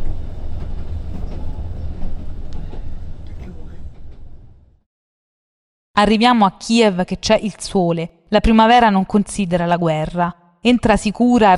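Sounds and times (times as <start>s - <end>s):
passenger train rumbling along rails: 0.0s - 4.8s
speech: 6.0s - 11.5s.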